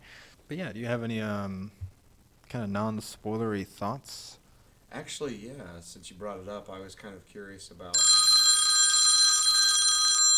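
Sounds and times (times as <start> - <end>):
speech: 0.5 - 1.8, 2.5 - 8.1
old rotary telephone bell ringing: 8.0 - 10.3.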